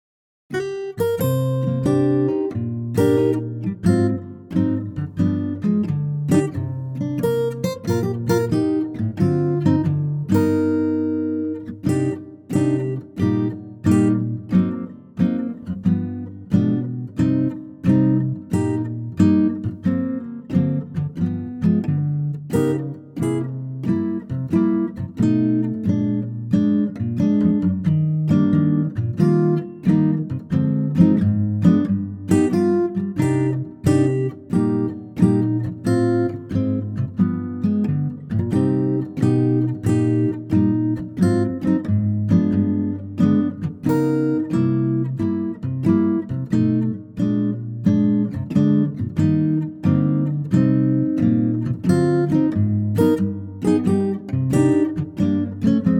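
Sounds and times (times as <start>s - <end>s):
acoustic guitar playing a C minor chord: 0.5s - 55.9s.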